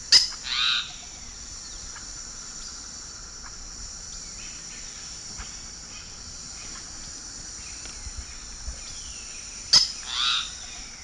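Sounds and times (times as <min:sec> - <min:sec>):
Piaya minuta call: 0:00.1 - 0:01.2, 0:09.7 - 0:10.9.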